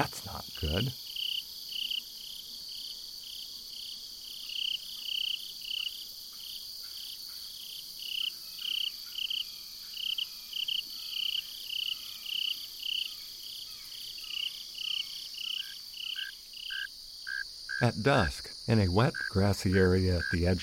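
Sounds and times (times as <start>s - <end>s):
speech: 0.0s - 1.0s, 17.8s - 20.6s
introduced cricket species chirping: 0.0s - 20.6s.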